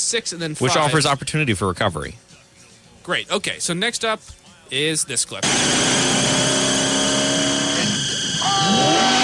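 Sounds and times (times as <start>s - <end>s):
speech: 0.1s - 2.3s, 3.1s - 6.8s
loud car engine roaring: 5.4s - 9.1s.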